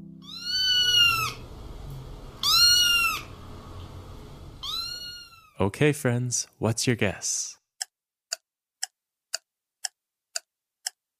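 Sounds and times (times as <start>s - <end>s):
cat meowing: 0.2s - 1.4s, 2.4s - 3.3s, 4.6s - 5.6s
speech: 5.6s - 7.6s.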